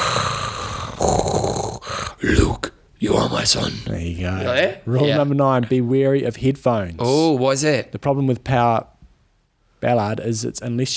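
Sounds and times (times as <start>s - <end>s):
voice imitating heavy mechanical mask breathing: 0.0s - 2.6s
speech: 3.0s - 8.9s, 9.8s - 10.9s.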